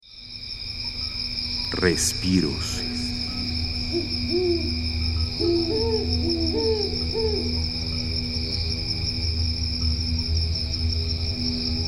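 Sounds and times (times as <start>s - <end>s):
chorus of crickets trilling at night in El Ancón, La Paz, Baja California Sur: 0.0s - 11.8s
insects humming at night in El Ancón, La Paz, Baja California Sur: 0.0s - 11.8s
speech: 1.7s - 2.8s, 3.9s - 7.8s
owl hooting at night in El Ancón, La Paz, Baja California Sur: 3.7s - 7.7s.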